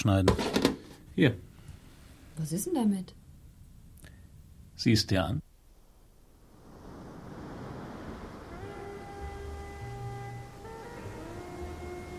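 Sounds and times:
speech: 0.0s - 1.5s, 2.4s - 3.2s, 4.8s - 5.5s
faint sustained tones: 5.7s - 12.1s
heavy ocean surf breaking on a shore: 5.8s - 11.4s.

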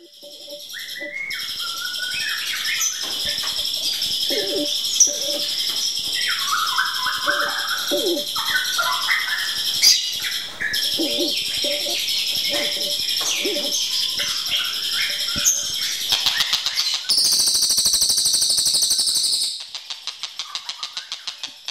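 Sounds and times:
bird song: 0.0s - 21.6s
lower clucking notes: 3.2s - 5.6s, 6.6s - 9.3s, 10.5s - 16.6s.

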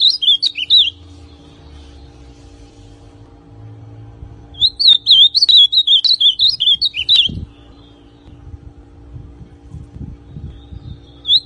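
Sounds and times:
ultramarine grosbeak singing: 0.0s - 2.3s, 4.5s - 8.5s, 10.2s - 11.4s.

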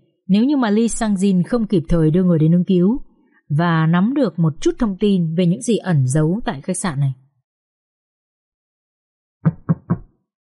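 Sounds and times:
speech: 0.3s - 7.2s
knocking on a hotel door: 9.5s - 10.1s.

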